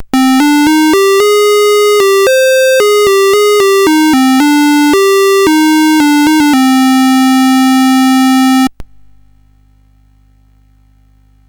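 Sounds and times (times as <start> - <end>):
chiptune music on a SID chip CSG8580R5: 0.0 - 8.7.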